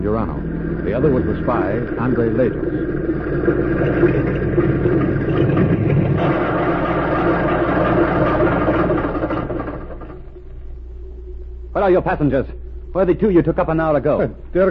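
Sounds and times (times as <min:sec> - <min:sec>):
speech: 0:00.0 - 0:04.7, 0:11.8 - 0:14.6
small plane engine running after landing on a field: 0:00.0 - 0:10.3.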